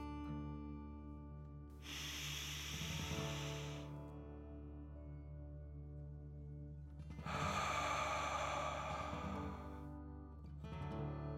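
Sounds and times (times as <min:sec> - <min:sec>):
soft sustained music: 0:00.0 - 0:11.3
slow deep breathing in and out during a guided relaxation exercise: 0:01.8 - 0:04.0, 0:07.1 - 0:09.9.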